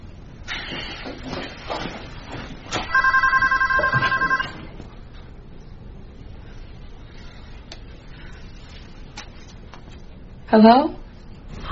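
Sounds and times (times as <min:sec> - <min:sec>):
telephone ringing with rapid electronic trill: 0:02.9 - 0:04.8
speech: 0:10.5 - 0:11.0.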